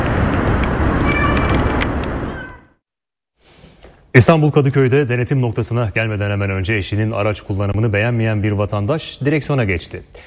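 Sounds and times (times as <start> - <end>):
mother cat meowing while searching for her kittens: 0.9 - 2.8
speech: 4.2 - 10.2.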